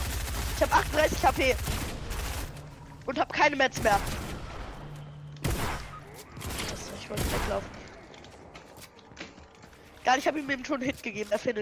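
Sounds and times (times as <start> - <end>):
video game gunfire: 0.0 - 2.6, 3.8 - 7.9
speech: 0.6 - 1.8, 3.1 - 4.2, 7.1 - 7.8, 10.0 - 11.6.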